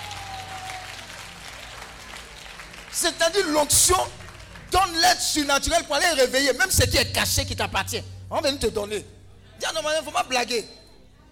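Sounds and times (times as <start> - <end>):
church congregation applauding during a worship service: 0.0 - 6.2
speech: 3.0 - 10.8.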